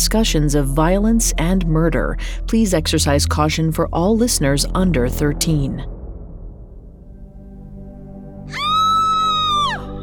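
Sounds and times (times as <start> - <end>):
speech: 0.1 - 6.0
high-pitched scream: 8.5 - 10.0.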